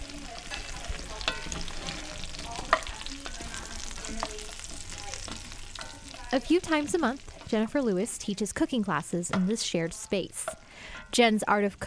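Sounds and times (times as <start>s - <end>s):
fingerling potatoes sizzling in a Dutch oven in an office kitchen: 0.0s - 11.8s
speech: 6.3s - 11.8s.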